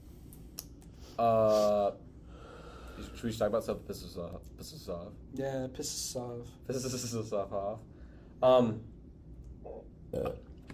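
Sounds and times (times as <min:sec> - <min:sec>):
speech: 0:01.2 - 0:02.1, 0:03.0 - 0:08.9, 0:09.6 - 0:10.5
loud throaty buzzing burp: 0:09.7 - 0:10.6.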